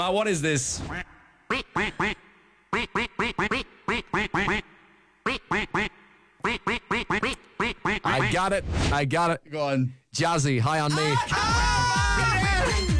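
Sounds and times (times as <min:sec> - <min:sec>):
speech: 0:00.0 - 0:01.1, 0:01.8 - 0:04.7, 0:08.2 - 0:11.9
duck quacks strung into a song melody: 0:00.9 - 0:08.4.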